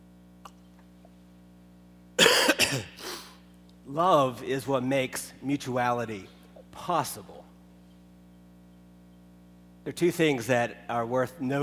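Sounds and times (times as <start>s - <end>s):
coughing from a tickle in the throat: 2.2s - 3.4s
throat clearing from a tickle in the throat: 2.2s - 3.4s
speech: 2.7s - 3.0s, 3.9s - 7.4s, 9.8s - 11.6s.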